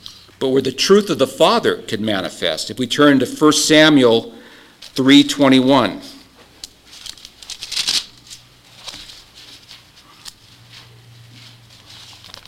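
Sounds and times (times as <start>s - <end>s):
faint steady hum: 0.0s - 12.4s
speech: 0.4s - 4.4s, 5.0s - 6.2s
little pieces of paper rustling while turning to a Bible passage: 6.4s - 12.4s.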